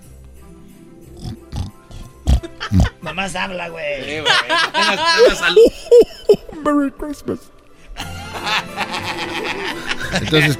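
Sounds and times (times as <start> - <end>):
person imitating a pig oinking: 1.1 - 3.0
laughter: 2.3 - 6.6, 8.0 - 10.5
speech: 2.7 - 7.6, 10.1 - 10.5.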